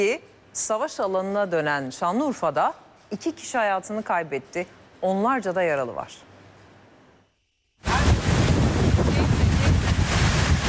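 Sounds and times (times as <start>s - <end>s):
speech: 0.0s - 6.3s
strong storm wind with a tornado roaring: 7.8s - 10.6s.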